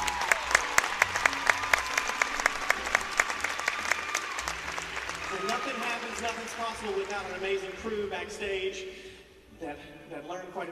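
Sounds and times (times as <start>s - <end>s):
large indoor theater audience applause: 0.0s - 7.8s
speech: 6.5s - 10.7s.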